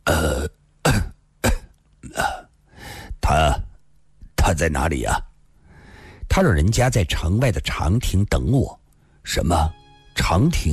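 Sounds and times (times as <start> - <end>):
harsh voiced coughing held back with effort: 0.1 - 2.5
speech: 4.6 - 5.3, 6.4 - 10.7.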